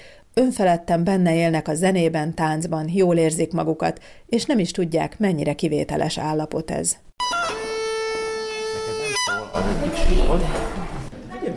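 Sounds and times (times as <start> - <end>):
noise at a children's bagpipe lesson: 0.0 - 11.5
speech: 0.4 - 7.3, 9.6 - 11.0
duda bagpipes steady reedy drone: 7.2 - 9.9
duda bagpipes being tuned at a children's bagpipe lesson: 7.2 - 10.6.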